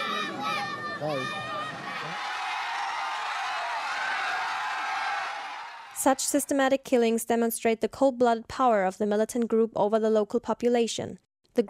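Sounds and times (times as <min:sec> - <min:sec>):
crowd screaming at a public execution: 0:00.0 - 0:06.4
speech: 0:01.0 - 0:01.5, 0:06.0 - 0:11.6.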